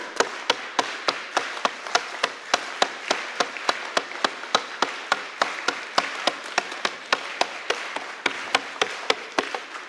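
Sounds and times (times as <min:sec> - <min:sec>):
large audience clapping rhythmically in unison: 0:00.0 - 0:09.8.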